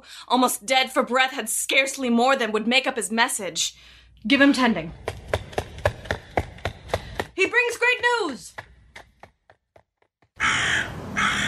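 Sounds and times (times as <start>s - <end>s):
speech: 0.0s - 5.2s, 7.4s - 8.7s
raven croaking: 10.4s - 11.4s.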